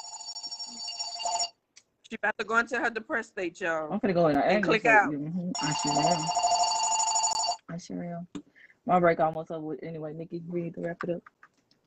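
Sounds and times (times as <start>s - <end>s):
telephone ringing with a high electronic tone: 0.0s - 1.6s, 5.6s - 7.6s
speech: 2.1s - 6.5s, 7.7s - 11.4s.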